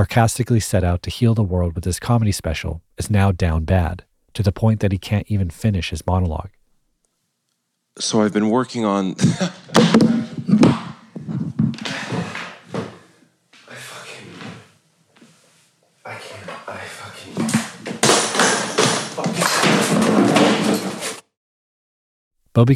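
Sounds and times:
speech: 0.0s - 6.6s, 8.0s - 10.1s, 22.6s - 22.7s
microphone dropping with a thud: 9.2s - 12.0s
equipment knocked over and crashing to the floor: 9.8s - 11.0s, 17.4s - 21.2s.

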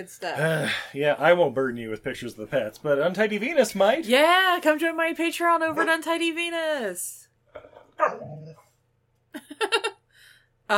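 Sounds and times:
speech: 0.0s - 7.3s
dog growling and barking: 7.6s - 8.7s.

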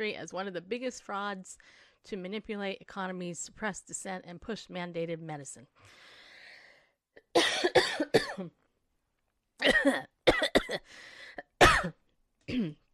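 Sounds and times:
speech: 0.0s - 6.1s, 8.0s - 8.6s, 9.6s - 10.1s, 11.8s - 12.8s
person with allergies coughing from a tickle in the throat: 7.3s - 8.5s, 9.6s - 10.9s, 11.6s - 12.9s
throat clearing: 12.5s - 12.9s.

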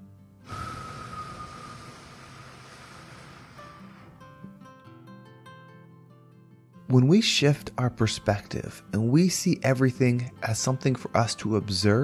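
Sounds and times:
deep exhale of breath during a guided meditation exercise: 0.4s - 4.4s
speech: 6.9s - 12.0s.

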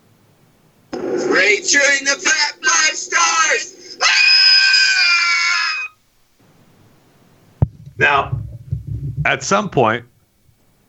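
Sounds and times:
speech: 1.1s - 4.2s, 8.0s - 8.3s, 9.2s - 10.1s
family members screaming together: 2.6s - 6.0s.

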